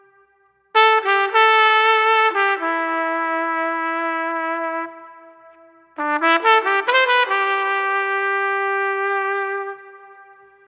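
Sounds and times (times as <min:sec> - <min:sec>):
trumpet solo: 0:00.0 - 0:10.6.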